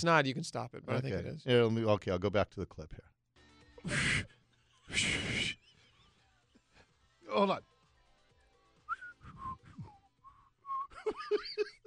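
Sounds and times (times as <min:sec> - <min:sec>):
speech: 0:00.0 - 0:03.1, 0:03.8 - 0:05.6, 0:07.3 - 0:07.7
person whistling short notes: 0:04.9 - 0:05.7, 0:08.9 - 0:11.0
laughter: 0:10.9 - 0:11.8.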